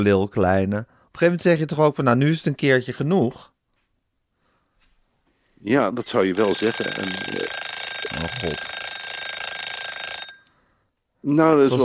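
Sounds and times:
speech: 0.0 - 3.5, 5.6 - 8.8, 11.2 - 11.8
shrill alarm clock bell ringing: 6.4 - 10.6.

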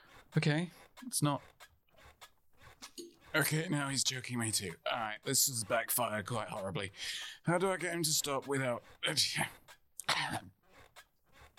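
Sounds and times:
speech: 0.3 - 1.7, 2.8 - 10.6
person coughing at someone's face: 10.0 - 10.5.

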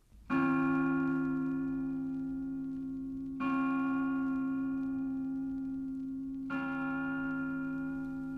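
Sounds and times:
large church bell tolling for the Angelus: 0.3 - 8.3.

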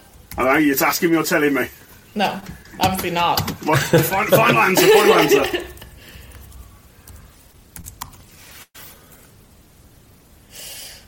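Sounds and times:
faint room hiss: 0.0 - 11.0
speech: 0.4 - 5.8
laughter: 3.6 - 5.8
soft key presses on a laptop keyboard while unlocking the laptop: 7.1 - 8.3.

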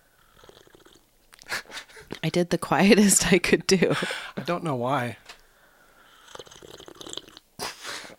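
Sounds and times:
speech: 2.2 - 5.2
breathy swallow: 6.0 - 7.4
slurping sip from a drink: 6.1 - 7.4.

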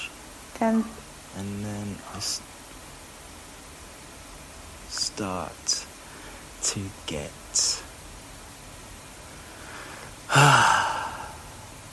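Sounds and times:
speech: 0.6 - 2.6, 5.2 - 5.9, 6.6 - 7.7
heavy voiced exhale like a sigh: 9.6 - 11.6.

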